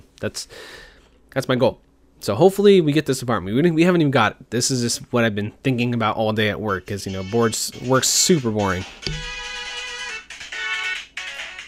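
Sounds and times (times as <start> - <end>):
speech: 0.2 - 9.5
phone ringtone playing chiptune-style video game melody: 7.1 - 8.0, 8.8 - 11.6.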